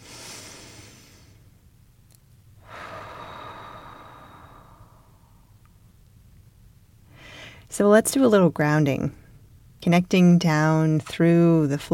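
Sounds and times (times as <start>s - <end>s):
person breathing in and out: 0.0s - 1.5s, 2.6s - 5.5s, 7.1s - 7.7s
speech: 7.8s - 9.2s, 9.8s - 11.9s.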